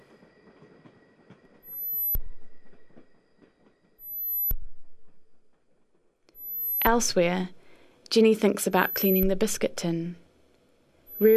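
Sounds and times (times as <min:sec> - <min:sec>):
train rolling along the rails with a steady low rumble: 0:00.0 - 0:04.0
rhythmic clatter of train wheels: 0:00.0 - 0:04.2
speech: 0:06.9 - 0:10.2, 0:11.2 - 0:11.3.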